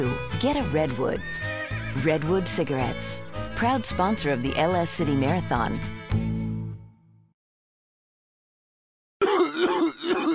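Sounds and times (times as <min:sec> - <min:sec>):
speech: 0:00.0 - 0:06.3
person coughing harshly: 0:09.2 - 0:10.3
person groaning: 0:09.2 - 0:10.3.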